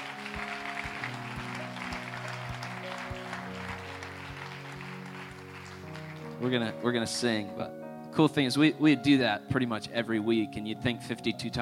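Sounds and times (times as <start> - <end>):
crowd cheering and clapping: 0.0 - 6.5
sustained musical chords: 0.0 - 9.5
speech: 6.4 - 11.6.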